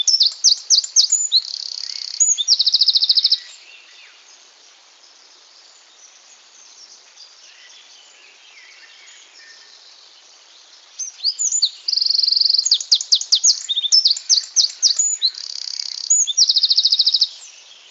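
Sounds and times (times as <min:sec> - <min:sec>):
Eurasian wren Troglodytes troglodytes singing: 0:00.0 - 0:04.0, 0:05.8 - 0:17.8.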